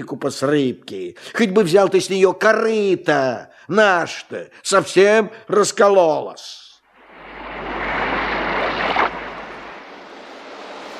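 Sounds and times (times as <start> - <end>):
speech: 0.0 - 6.6
sea waves washing on a slightly rough sea: 6.8 - 10.9
wind: 6.8 - 10.9.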